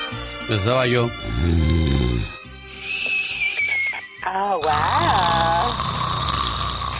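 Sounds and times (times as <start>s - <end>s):
speech: 0.5s - 2.4s, 4.3s - 5.8s
voice imitating a loud rasping snore: 1.2s - 2.5s, 4.6s - 6.9s
comical whistling and wheezing noises: 2.1s - 4.2s
playful vocal sounds: 4.5s - 5.9s.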